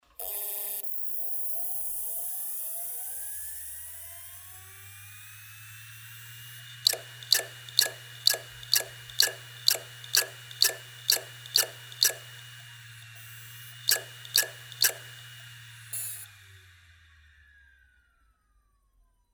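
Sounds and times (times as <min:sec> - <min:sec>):
hard drive noise: 0:06.6 - 0:16.2.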